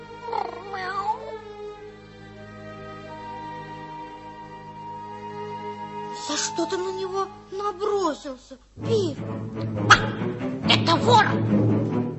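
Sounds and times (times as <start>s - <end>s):
cat meowing: 0.2s - 1.4s
speech: 6.2s - 12.1s.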